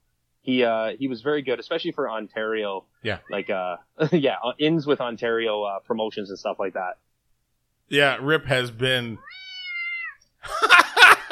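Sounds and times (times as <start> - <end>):
speech: 0.5 - 7.0, 7.9 - 9.4
pet cat meowing: 3.1 - 3.7, 9.2 - 10.3
laughter: 10.4 - 11.3.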